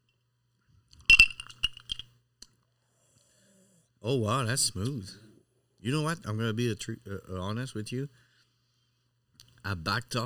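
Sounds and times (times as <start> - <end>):
glasses clinking together in a toast: 1.1 - 2.0
speech: 4.0 - 5.2, 5.8 - 8.2, 9.7 - 10.2.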